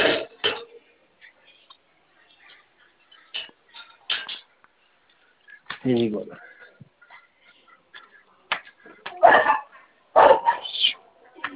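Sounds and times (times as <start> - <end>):
speech: 5.8 - 6.5
dog barking in sharp bursts: 9.1 - 11.0.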